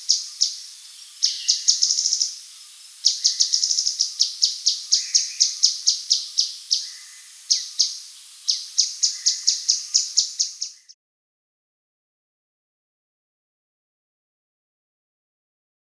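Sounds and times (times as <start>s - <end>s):
Grey-headed canary-flycatcher chipping calls: 0.0s - 10.9s.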